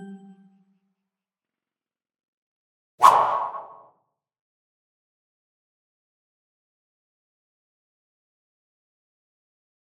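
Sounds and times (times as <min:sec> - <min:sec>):
thrown baseball whooshing through the air: 0:03.0 - 0:03.9.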